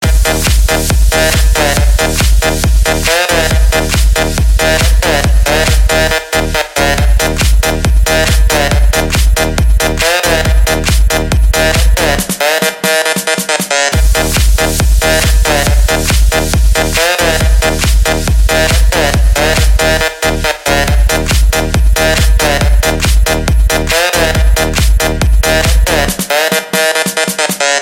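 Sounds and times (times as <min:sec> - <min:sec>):
loud techno ringtone: 0:00.0 - 0:27.7.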